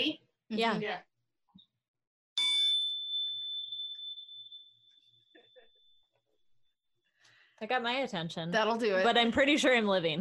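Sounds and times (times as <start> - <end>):
speech: 0.0 - 1.1, 7.6 - 10.1
chime being struck and ringing: 2.4 - 5.8.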